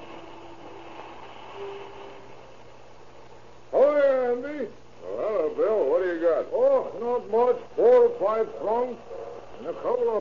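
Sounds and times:
passenger train rolling slowly into the Southern Pacific Station: 0.0s - 2.9s
faint metallic hum: 0.0s - 10.1s
speech: 7.2s - 10.1s.

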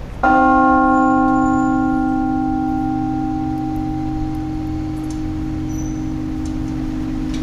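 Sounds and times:
two-ton modern cast bell ringing with long hum: 0.2s - 7.4s.

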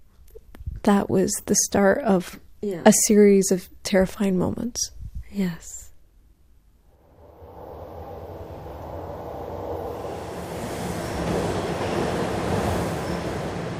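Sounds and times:
speech: 0.8s - 5.8s
subway train rumbling through a station: 7.0s - 13.7s
subway train wheels squealing on rails: 7.2s - 13.7s.

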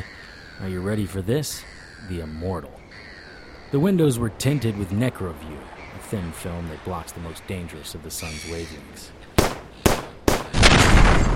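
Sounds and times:
speech: 0.6s - 3.1s, 3.7s - 9.3s
automatic weapon gunfire at a houseboat: 9.4s - 11.3s.

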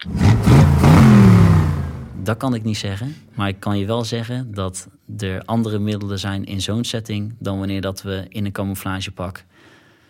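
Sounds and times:
car engine revving: 0.0s - 2.7s
speech: 2.3s - 9.7s.

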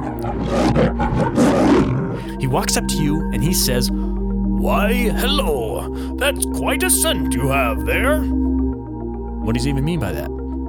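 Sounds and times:
lion roaring: 0.0s - 2.4s
speech: 2.4s - 4.0s, 4.6s - 8.5s, 9.5s - 10.4s.

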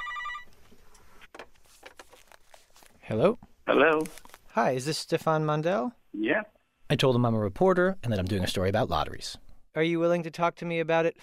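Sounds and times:
phone line ringing on outgoing call to a cell phone in Vanuatu: 0.0s - 0.5s
soft clicks and rustles: 0.5s - 3.0s
speech: 3.1s - 11.2s.

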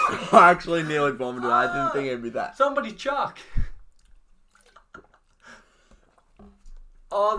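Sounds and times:
laughter: 0.0s - 3.0s
speech: 0.3s - 3.6s, 7.1s - 7.3s
wet crunching of food being chewed: 3.9s - 7.1s.

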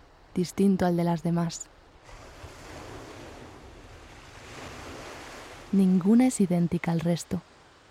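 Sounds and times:
speech: 0.4s - 1.8s, 5.7s - 7.5s
ocean waves crashing against rocks below a seaside cliff: 2.0s - 6.3s.

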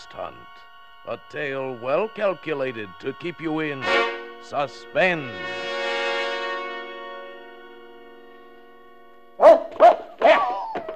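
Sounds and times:
sustained organ-like chord: 0.0s - 10.2s
speech: 0.2s - 5.6s
dog barking: 9.4s - 10.9s.

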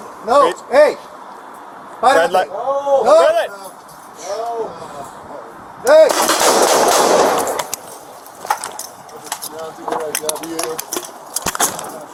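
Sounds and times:
speech: 0.2s - 1.1s, 2.0s - 5.1s, 5.8s - 7.5s, 9.5s - 11.0s, 11.6s - 12.1s
gunshots fired during a police confrontation: 6.0s - 7.8s.

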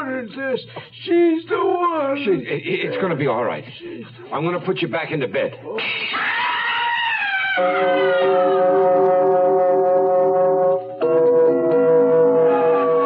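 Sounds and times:
speech: 0.2s - 6.4s, 7.6s - 9.1s
loud ambulance siren wailing: 6.4s - 13.0s.

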